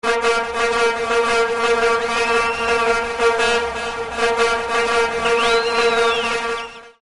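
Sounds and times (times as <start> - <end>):
vuvuzela: 0.0 - 7.0
crowd cheering: 1.2 - 7.0.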